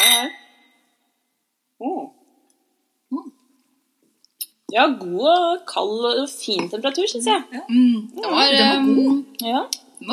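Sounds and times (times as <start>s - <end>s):
wine glasses clinking in a toast: 0.0s - 0.5s, 8.2s - 9.2s
speech: 4.8s - 10.1s
short spoken exclamations: 7.5s - 9.3s.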